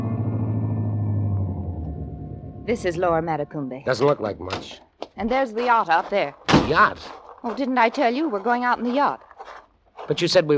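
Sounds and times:
car engine rumbling while pulling into a shed by a dock in Florida: 0.0s - 4.4s
speech: 2.7s - 10.5s.

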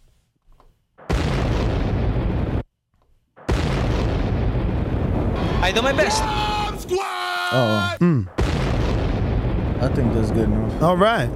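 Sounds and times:
bomb explosion sound effects: 1.0s - 2.6s, 3.4s - 7.0s, 8.3s - 11.3s
speech: 5.6s - 8.4s, 9.8s - 11.3s.

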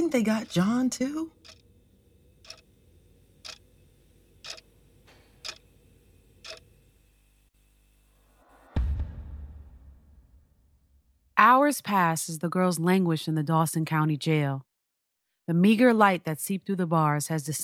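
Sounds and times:
clock ticking: 0.0s - 1.7s, 2.4s - 2.7s, 3.4s - 3.7s, 4.4s - 4.7s, 5.4s - 5.7s, 6.4s - 6.6s
speech: 0.1s - 1.6s, 11.4s - 14.7s, 15.5s - 17.6s.

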